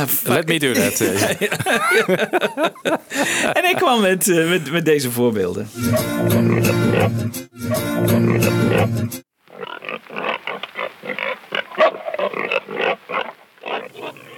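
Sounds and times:
speech: 0.0 - 10.4, 12.3 - 14.3
laughter: 0.6 - 4.6
pig squealing: 5.8 - 14.3
pig grunting and snorting: 5.9 - 7.2, 8.1 - 14.3.

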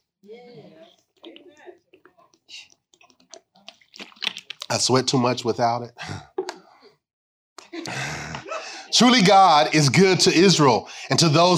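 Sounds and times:
person gulping and swallowing water from a bottle: 0.9 - 5.0
small plastic bottle clicks and crinkles: 1.2 - 4.8
speech: 4.7 - 6.3, 9.0 - 11.5
laughter: 7.7 - 9.5.

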